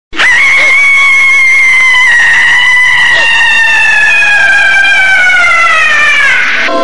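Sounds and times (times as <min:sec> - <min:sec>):
person screaming in terror: 0:00.2 - 0:06.7.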